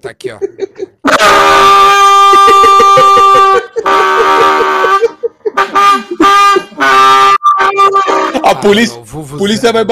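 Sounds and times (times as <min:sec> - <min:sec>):
speech: 0:00.0 - 0:01.7, 0:08.6 - 0:09.8
laughter: 0:00.2 - 0:01.5, 0:02.1 - 0:07.0, 0:07.9 - 0:08.8
loud sustained brassy buzzing horn blast: 0:01.1 - 0:08.6.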